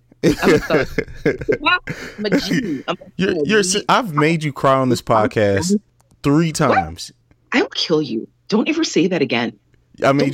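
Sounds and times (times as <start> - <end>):
light chuckle: 0.2 - 3.0
speech: 0.2 - 10.3
person coughing: 0.3 - 3.1.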